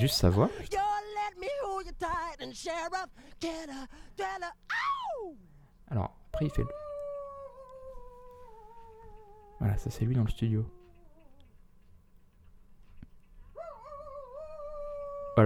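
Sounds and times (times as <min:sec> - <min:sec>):
speech: 0:00.0 - 0:00.8, 0:02.0 - 0:06.8, 0:09.6 - 0:10.8
man imitating a wolf howl: 0:04.7 - 0:05.4, 0:06.4 - 0:11.4, 0:13.6 - 0:15.4.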